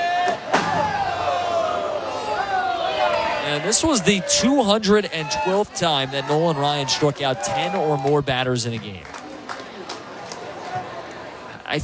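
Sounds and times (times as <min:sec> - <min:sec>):
steady murmur of a ballpark crowd: 0:00.0 - 0:11.8
foul baseball smacking into the press box: 0:00.3 - 0:01.8
speech: 0:03.5 - 0:09.2.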